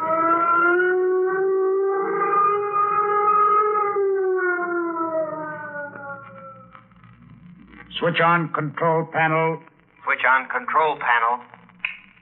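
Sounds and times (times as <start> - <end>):
flight warning signal siren wailing: 0.0 - 7.0
speech: 8.0 - 11.6.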